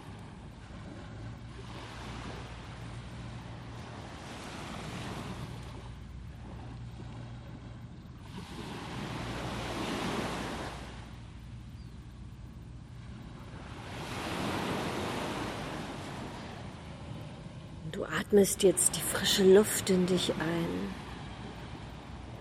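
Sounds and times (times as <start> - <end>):
distant motorboat engine passing: 0.0 - 22.4
ocean waves washing onto a beach: 0.0 - 22.4
wind: 0.0 - 22.4
speech: 18.0 - 21.0.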